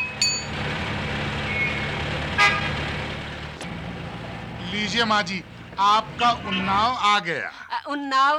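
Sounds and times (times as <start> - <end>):
vehicle engine rumbling: 0.0 - 7.6
short sharp vehicle horn toots: 2.4 - 2.7
speech: 4.8 - 8.3.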